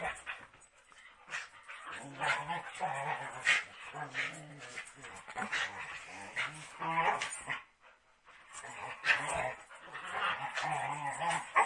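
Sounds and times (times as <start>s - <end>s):
dogs play fighting, nipping and growling: 0.0s - 11.6s.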